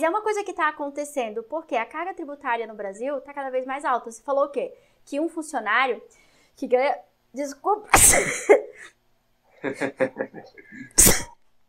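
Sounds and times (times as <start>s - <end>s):
speech: 0.0s - 9.0s, 9.6s - 11.3s
quiet intake of breath: 4.8s - 5.0s, 6.1s - 6.6s
single sharp sneeze: 7.9s - 9.0s, 10.6s - 11.4s
laughter: 9.6s - 10.9s.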